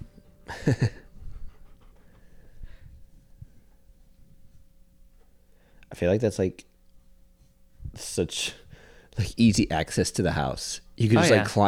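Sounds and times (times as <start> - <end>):
speech: 0.6 - 1.0, 6.0 - 6.7, 7.9 - 8.6, 9.2 - 11.6
large golden doodle dog panting into microphone: 0.9 - 3.9.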